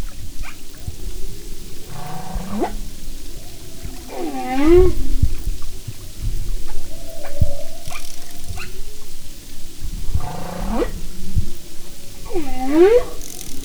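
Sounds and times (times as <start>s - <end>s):
humpback whale song moans and wails: 0.0s - 13.6s.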